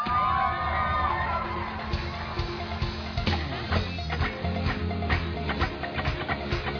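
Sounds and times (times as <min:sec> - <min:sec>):
whoops and yells: 0:00.0 - 0:01.9
large crowd shouting and cheering: 0:00.0 - 0:06.7.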